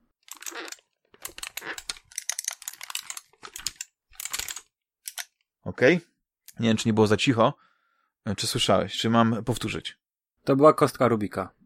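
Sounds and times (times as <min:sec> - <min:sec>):
microswitch joystick clicking and rattling: 0:00.2 - 0:05.4
wheel turning: 0:00.2 - 0:05.4
speech: 0:05.8 - 0:07.6, 0:08.2 - 0:11.6.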